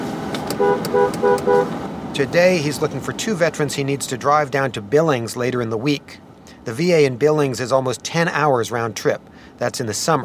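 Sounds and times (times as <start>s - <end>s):
car horn honking: 0.5s - 1.8s
speech: 2.2s - 10.2s.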